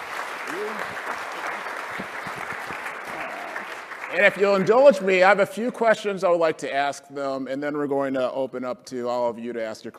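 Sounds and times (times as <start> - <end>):
voice or cheer from the crowd: 0.0 - 5.2
audience applause: 0.0 - 5.3
speech: 4.1 - 9.9.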